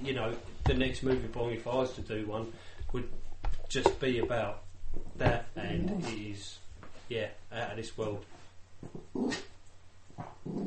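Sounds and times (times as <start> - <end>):
speech: 0.0 - 9.5
dog growling and snarling while fighting with a carpet: 5.6 - 6.2, 9.0 - 9.5, 10.4 - 10.6.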